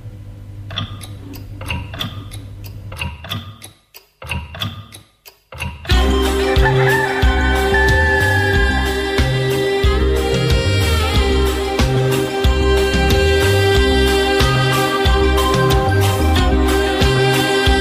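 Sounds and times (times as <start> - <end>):
clock ticking: 0.7 - 8.0
sustained ringing tone with a low droning layer: 6.0 - 16.9.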